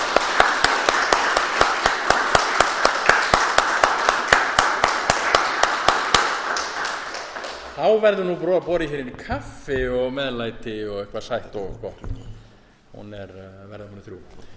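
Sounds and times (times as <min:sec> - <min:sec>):
audience clapping after a discussion event: 0:00.0 - 0:08.7
speech: 0:07.8 - 0:12.3, 0:12.9 - 0:14.5.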